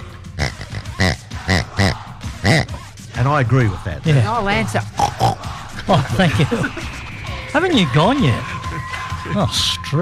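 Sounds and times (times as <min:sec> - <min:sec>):
person imitating pig oinking grunting and squealing: 0:00.3 - 0:02.8, 0:04.9 - 0:05.5
laughter: 0:00.5 - 0:02.7, 0:04.1 - 0:10.0
speech: 0:02.5 - 0:04.9, 0:05.9 - 0:06.9, 0:07.6 - 0:08.5, 0:09.3 - 0:10.0.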